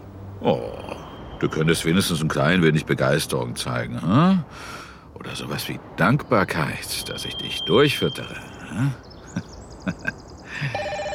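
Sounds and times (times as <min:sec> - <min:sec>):
faint hiss: 0:00.0 - 0:11.1
speech: 0:00.4 - 0:10.0
telephone ringing with a bright electronic warble: 0:10.6 - 0:11.1.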